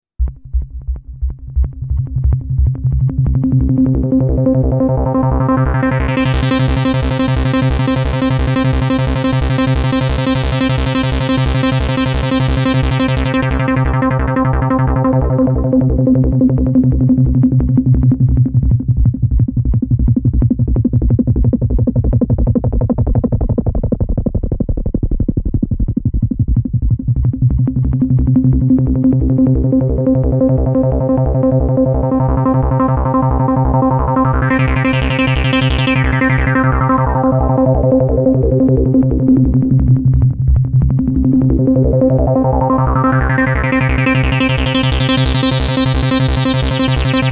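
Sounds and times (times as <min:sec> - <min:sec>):
ARP synthesizer VCF envelope sweep: 0:00.2 - 0:47.3.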